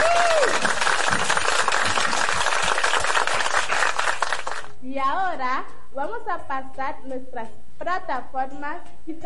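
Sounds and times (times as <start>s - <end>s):
audience applause: 0.0s - 4.7s
speech: 6.0s - 9.2s.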